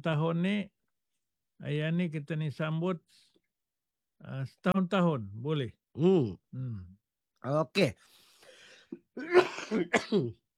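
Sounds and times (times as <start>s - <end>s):
speech: 0.0s - 0.8s, 1.6s - 3.3s, 4.2s - 8.2s, 8.9s - 10.4s
person coughing: 9.2s - 10.4s.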